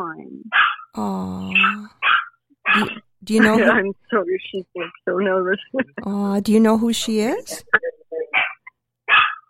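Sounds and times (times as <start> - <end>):
speech: 0.0 - 2.0, 2.8 - 7.7
dog barking: 0.5 - 0.9, 1.6 - 3.0, 8.4 - 9.4.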